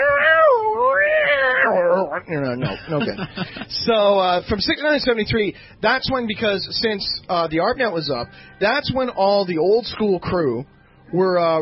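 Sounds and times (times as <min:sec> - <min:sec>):
cat meowing: 0:00.0 - 0:02.2
speech: 0:02.2 - 0:11.5
laughter: 0:02.5 - 0:03.7.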